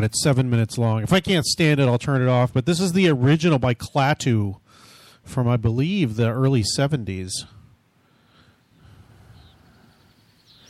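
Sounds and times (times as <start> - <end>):
speech: 0.0 - 4.6, 5.2 - 7.6
low rumbling outdoor ambience: 0.0 - 10.6
faint bird chirps: 8.3 - 10.6.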